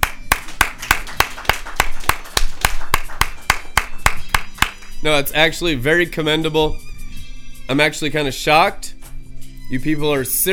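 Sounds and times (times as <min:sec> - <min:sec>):
audience applause: 0:00.0 - 0:04.8
speech: 0:05.0 - 0:06.9, 0:07.7 - 0:08.9, 0:09.7 - 0:10.5.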